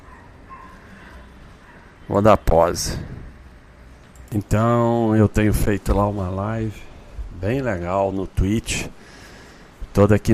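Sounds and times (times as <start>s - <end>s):
several dogs barking and yipping: 0.0s - 2.0s
steady hiss: 0.1s - 10.3s
speech: 2.1s - 3.1s, 4.3s - 9.2s, 10.0s - 10.3s.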